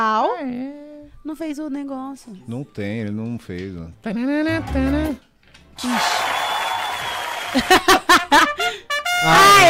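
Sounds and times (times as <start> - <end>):
speech: 0.0 - 6.3, 7.5 - 9.6
applause: 5.8 - 8.1
people laughing: 7.3 - 8.8.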